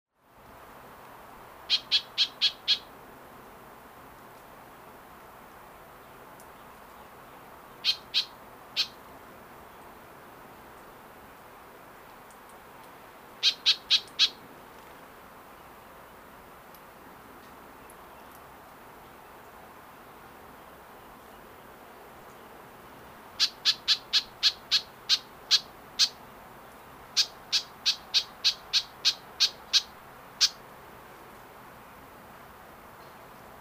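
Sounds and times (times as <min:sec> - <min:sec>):
White-eyed Vireo Vireo griseus singing: 0:01.7 - 0:02.9, 0:06.6 - 0:09.0, 0:13.4 - 0:14.4, 0:23.4 - 0:26.2, 0:27.1 - 0:30.6.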